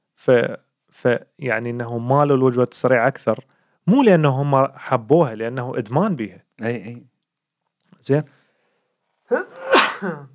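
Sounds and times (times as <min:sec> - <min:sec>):
speech: 0:00.2 - 0:07.1, 0:08.0 - 0:08.4, 0:09.3 - 0:10.3
person sneezing: 0:09.3 - 0:10.3.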